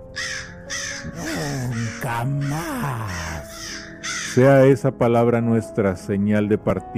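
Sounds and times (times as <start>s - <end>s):
crow cawing: 0.0s - 4.5s
low voice speaking: 1.0s - 3.6s
speech: 2.0s - 3.4s, 4.4s - 6.9s.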